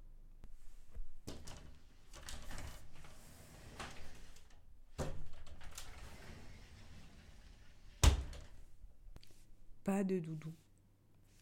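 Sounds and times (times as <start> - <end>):
wooden wardrobe door opening with soft creaks: 1.3 - 8.6
speech: 9.8 - 10.6.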